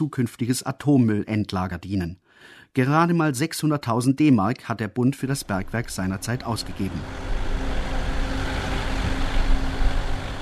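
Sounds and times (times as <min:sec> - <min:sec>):
speech: 0:00.0 - 0:07.4
faint hum: 0:05.2 - 0:10.4
dirty-yellow small truck engine rumbling through dark mine tunnels: 0:05.3 - 0:10.4.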